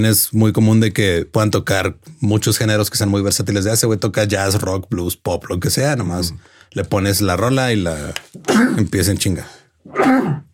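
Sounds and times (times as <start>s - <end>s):
speech: 0.0s - 10.5s
person sneezing from allergy: 9.8s - 10.5s.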